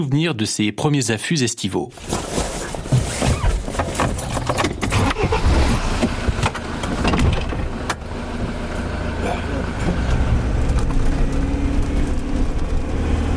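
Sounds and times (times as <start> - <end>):
speech: 0.0 - 2.7
4x4 off-road vehicle rattles and bumps: 1.9 - 13.3
rugged 4x4 off-road vehicle engine driving off: 4.9 - 13.3.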